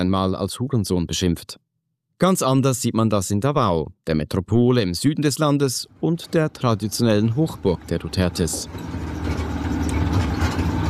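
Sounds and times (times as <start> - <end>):
speech: 0.0 - 9.1
motorcycle tricycle with metal sidecar engine rumbling on gravel roads: 6.0 - 10.8.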